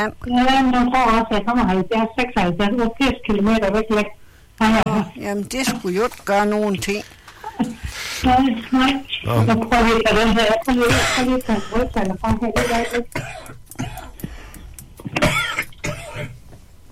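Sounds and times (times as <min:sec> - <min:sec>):
speech: 0:00.0 - 0:14.0
person clearing throat: 0:10.8 - 0:11.3, 0:12.6 - 0:14.2, 0:15.1 - 0:16.4
person coughing: 0:10.8 - 0:11.8, 0:12.6 - 0:14.2, 0:15.2 - 0:16.4.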